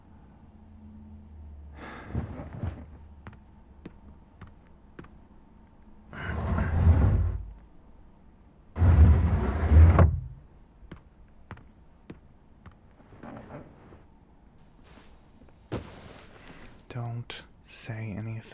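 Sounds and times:
bed being shoved across the floor: 0:01.8 - 0:03.1, 0:06.2 - 0:07.5, 0:08.8 - 0:10.2, 0:12.9 - 0:16.8
speech: 0:17.3 - 0:18.5.

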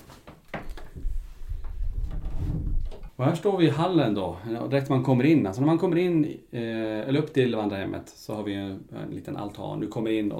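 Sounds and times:
kitchen door swinging shut: 0:00.6 - 0:03.2
low rumbling and shuffling in the room: 0:00.7 - 0:03.2
speech: 0:03.2 - 0:10.3.

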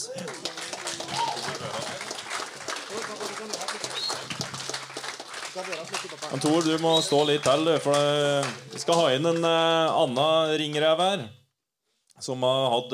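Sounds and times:
voices and cheering in the crowd: 0:00.0 - 0:04.8, 0:05.6 - 0:10.5
audience clapping: 0:00.0 - 0:11.0
speech: 0:05.6 - 0:11.4, 0:12.2 - 0:12.9.

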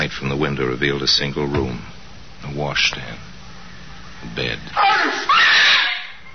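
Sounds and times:
speech: 0:00.1 - 0:03.3, 0:04.2 - 0:05.8
woman screaming: 0:04.8 - 0:06.2.

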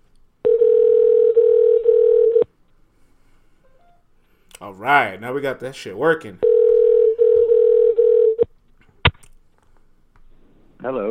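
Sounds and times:
telephone ringback tone from a call placed to a guest: 0:00.4 - 0:02.5, 0:06.4 - 0:08.4
speech: 0:04.7 - 0:06.5.

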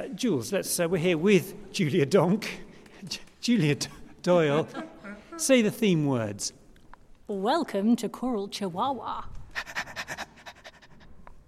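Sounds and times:
speech: 0:00.2 - 0:06.6, 0:07.3 - 0:09.7
person imitating a dog panting: 0:09.5 - 0:11.4.

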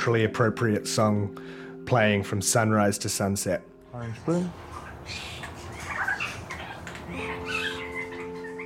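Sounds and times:
speech: 0:00.0 - 0:05.4
young songbird in an aviary chirping: 0:04.8 - 0:08.6.

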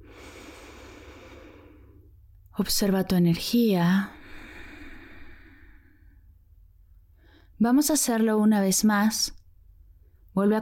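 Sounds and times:
deep breath during a guided meditation: 0:00.0 - 0:02.2, 0:04.1 - 0:06.4, 0:07.0 - 0:07.6
speech: 0:02.6 - 0:04.2, 0:07.6 - 0:09.4, 0:10.4 - 0:10.6.

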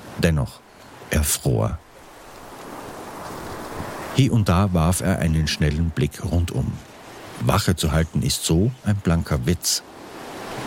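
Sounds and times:
ocean waves washing and churning: 0:00.0 - 0:10.6
speech: 0:00.2 - 0:01.9, 0:04.2 - 0:10.1
wind roaring over the open sea: 0:02.1 - 0:08.2.

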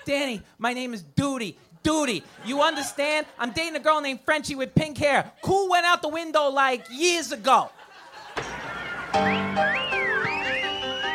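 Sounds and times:
speech: 0:00.1 - 0:07.8, 0:09.2 - 0:09.8
laughter: 0:02.0 - 0:04.0, 0:06.6 - 0:09.8
wolf whistles: 0:08.7 - 0:11.1.

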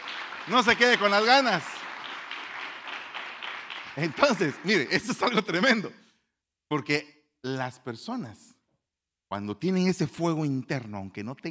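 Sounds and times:
crowd applauding: 0:00.0 - 0:05.8
speech: 0:00.5 - 0:01.8, 0:04.0 - 0:06.0, 0:06.7 - 0:08.5, 0:09.3 - 0:11.4.

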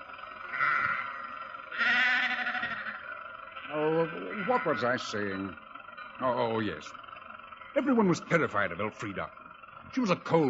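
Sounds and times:
faint hum: 0:00.0 - 0:10.4
sheep bleating on the road: 0:00.2 - 0:08.4
speech: 0:04.5 - 0:05.6, 0:06.2 - 0:07.0, 0:07.8 - 0:10.4.

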